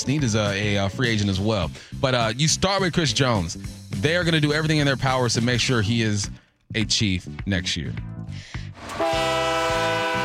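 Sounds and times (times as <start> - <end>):
speech: 0.0 - 9.0
loud train horn blast: 8.8 - 10.2.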